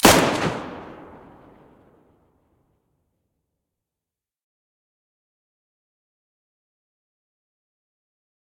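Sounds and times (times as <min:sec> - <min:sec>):
Mosin rifle muzzle blast: 0:00.0 - 0:02.0.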